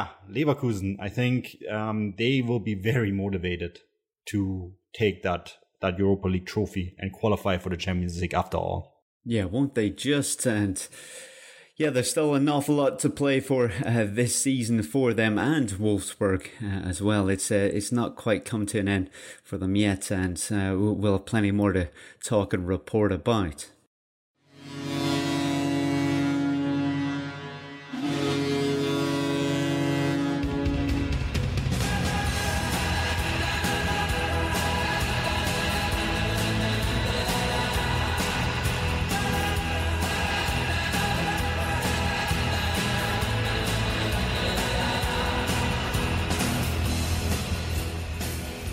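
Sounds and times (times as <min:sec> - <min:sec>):
speech: 0:00.0 - 0:23.8
deep foghorn-style horn blasts: 0:24.8 - 0:47.2
stadium goal anthem with a steady beat: 0:30.3 - 0:48.7.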